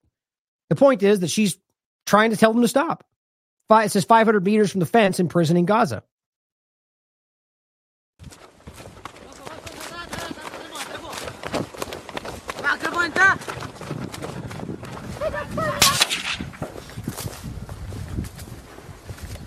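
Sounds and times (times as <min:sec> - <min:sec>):
speech: 0:00.7 - 0:03.1, 0:03.7 - 0:06.1
voices and commotion near the Gaza border fence: 0:09.1 - 0:16.5
soldiers firing gunshots near the Gaza border fence: 0:15.7 - 0:16.9.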